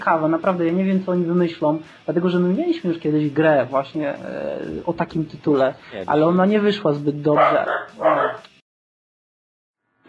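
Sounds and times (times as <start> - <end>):
speech: 0.0 - 8.5
dog barking at someone knocking at the door: 7.3 - 8.5.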